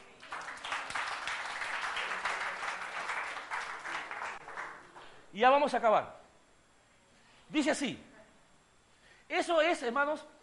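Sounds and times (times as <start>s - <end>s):
audience applauding in a large room: 0.0s - 5.1s
speech: 5.3s - 6.2s, 7.5s - 8.1s, 9.3s - 10.3s.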